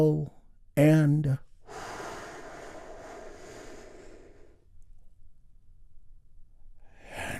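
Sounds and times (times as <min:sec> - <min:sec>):
speech: 0:00.0 - 0:01.9
long deep breath drawn in softly: 0:01.6 - 0:04.7.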